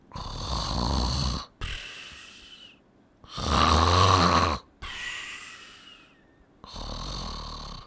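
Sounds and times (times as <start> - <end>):
heavy snoring of sleeping soldiers at guard posts at night: 0.1 - 1.9, 3.3 - 5.0, 6.6 - 7.8.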